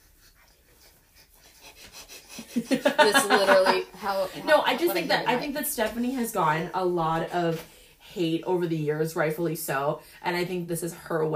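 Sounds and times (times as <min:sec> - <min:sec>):
dog panting heavily: 0:00.0 - 0:03.0
laughter: 0:02.3 - 0:05.5
speech: 0:02.6 - 0:11.3.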